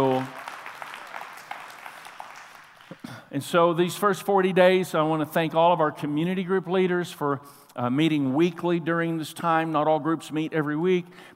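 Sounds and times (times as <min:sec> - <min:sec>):
large audience clapping together: 0:00.0 - 0:03.2
speech: 0:03.3 - 0:11.3.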